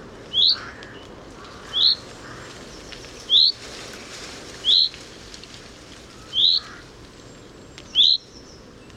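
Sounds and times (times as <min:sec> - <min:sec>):
common chaffinch Fringilla coelebs calls: 0:00.3 - 0:01.0, 0:01.6 - 0:03.6, 0:06.2 - 0:06.8, 0:07.9 - 0:08.6.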